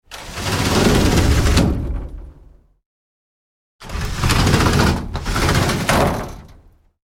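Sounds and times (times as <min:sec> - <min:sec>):
sliding greenhouse door opening and closing: 0:00.0 - 0:02.6, 0:03.8 - 0:06.8.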